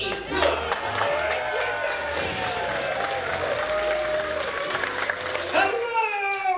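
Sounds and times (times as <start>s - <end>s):
audience at a live show cheering and applauding: 0.0s - 6.4s.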